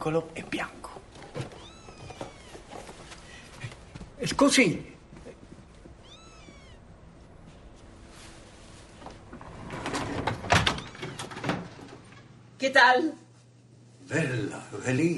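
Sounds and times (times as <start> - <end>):
speech: 0.0 - 0.7, 4.2 - 5.0, 12.7 - 13.2, 14.1 - 15.1
cat meowing: 1.5 - 2.8, 5.9 - 7.0, 10.7 - 11.4.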